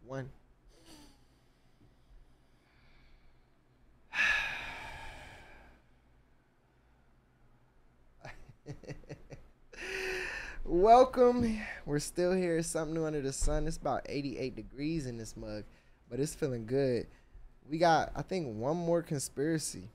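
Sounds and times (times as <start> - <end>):
speech: 0.1 - 0.4, 10.8 - 19.9
deep breath taken on microphone: 0.7 - 6.2, 9.8 - 10.7.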